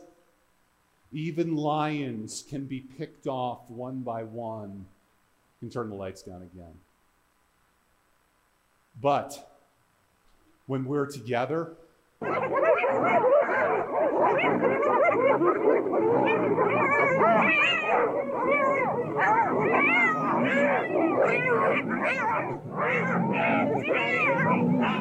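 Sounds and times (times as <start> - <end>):
speech: 1.1 - 5.0, 5.6 - 6.9, 9.0 - 9.5, 10.7 - 24.9
dog barking: 12.2 - 24.9.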